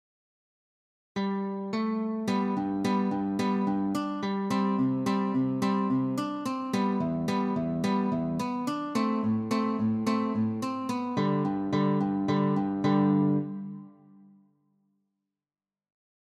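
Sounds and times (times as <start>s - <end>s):
string picking: 1.2s - 14.1s.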